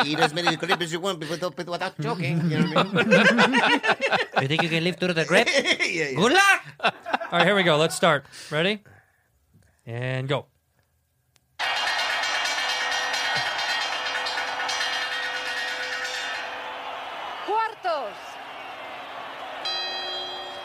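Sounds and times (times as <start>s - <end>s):
laughter: 0.0s - 8.0s
speech: 0.0s - 8.9s, 9.8s - 10.5s
clock-tower bells chiming the quarter hour: 11.6s - 16.8s, 19.6s - 20.6s.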